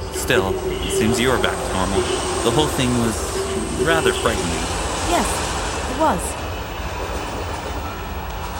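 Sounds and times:
train rumbling into a station: 0.0 - 8.5
speech: 0.3 - 6.4.

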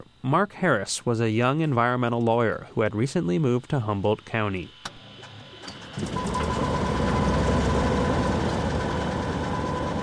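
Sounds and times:
speech: 0.2 - 4.8
small Cessna propeller plane engine starting: 4.8 - 10.0.

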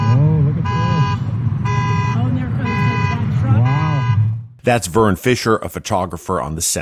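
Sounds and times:
car alarms of cars floating in a flooded parking lot: 0.0 - 4.6
car horns of cars floating in a flooded parking lot blaring: 0.0 - 6.8
speech: 4.7 - 6.8.

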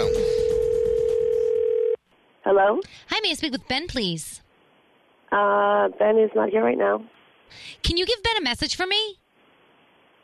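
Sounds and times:
phone line ringing with an electronic ring tone: 0.0 - 2.0
speech: 2.5 - 4.4, 5.3 - 9.2.

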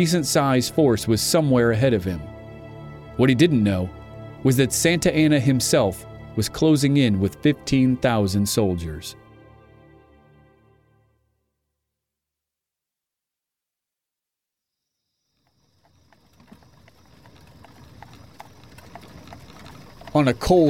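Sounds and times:
speech: 0.0 - 2.4, 3.2 - 9.2, 20.2 - 20.6
horse hooves clip-clopping along a path in the hills: 15.4 - 20.6.

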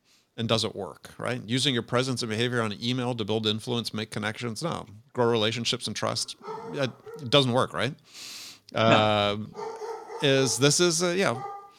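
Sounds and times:
speech: 0.4 - 11.5
dog barking: 6.3 - 7.5, 9.5 - 11.7.

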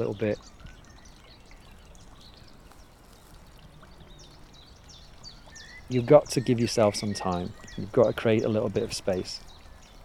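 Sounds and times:
speech: 0.0 - 0.7, 5.9 - 9.5
bird chirps and calls by a woodland pond: 0.0 - 10.0.

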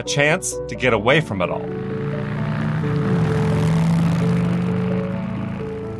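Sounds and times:
speech: 0.0 - 1.9
motorcycle riding past: 1.4 - 5.9.

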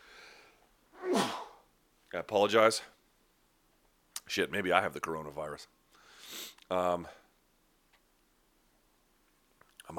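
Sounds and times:
sneeze: 1.0 - 1.6
speech: 2.2 - 3.0, 4.3 - 7.2.

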